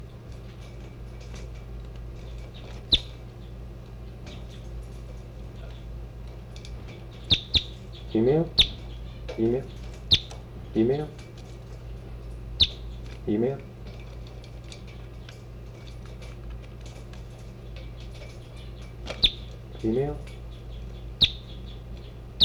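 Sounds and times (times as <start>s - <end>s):
birds chirping: 0.0s - 22.4s
low steady hum: 0.0s - 22.4s
short rising squeaky bird calls: 2.8s - 3.2s, 7.1s - 10.7s, 12.6s - 13.0s, 18.6s - 22.4s
speech: 8.1s - 8.6s, 9.4s - 9.8s, 10.8s - 11.2s, 13.3s - 13.7s, 19.8s - 20.3s.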